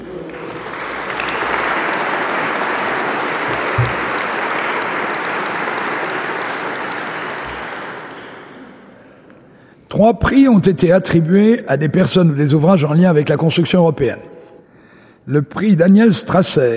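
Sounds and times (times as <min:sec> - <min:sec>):
large audience applauding prize winners: 0:00.0 - 0:08.5
speech: 0:10.0 - 0:14.3, 0:15.2 - 0:16.7.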